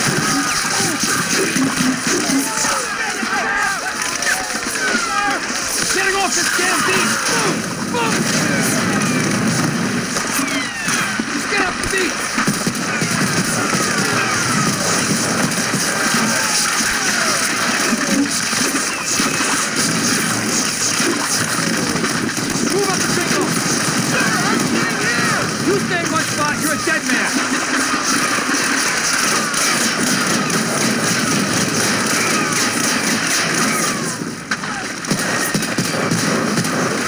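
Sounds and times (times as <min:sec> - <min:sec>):
war sounds: 0:00.0 - 0:37.0.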